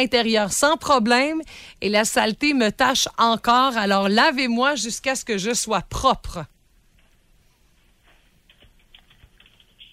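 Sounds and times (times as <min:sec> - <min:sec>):
speech: 0:00.0 - 0:06.5
rapid keyboard typing: 0:08.0 - 0:09.9.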